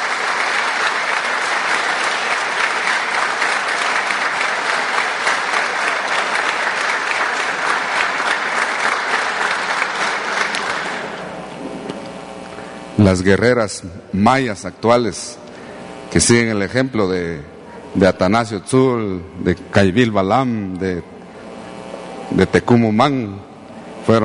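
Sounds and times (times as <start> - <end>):
audience applause at a session on indigenous land defence: 0.0 - 11.5
speech: 13.1 - 15.4, 16.1 - 21.1, 22.3 - 24.2.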